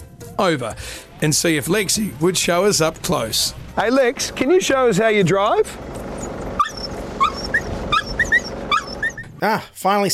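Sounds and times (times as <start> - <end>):
speech: 0.4 - 6.0, 9.4 - 10.1
dog yipping and whimpering: 6.2 - 9.4.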